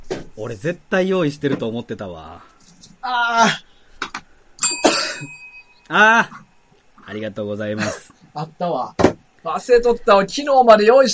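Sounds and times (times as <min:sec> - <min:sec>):
speech: 0:00.4 - 0:03.7, 0:05.2 - 0:06.5, 0:07.1 - 0:11.1
small bell ding: 0:04.6 - 0:05.9.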